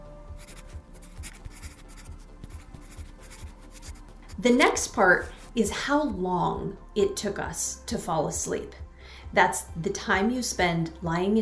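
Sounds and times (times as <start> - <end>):
writing on paper: 0.4 - 5.5
speech: 4.4 - 11.4.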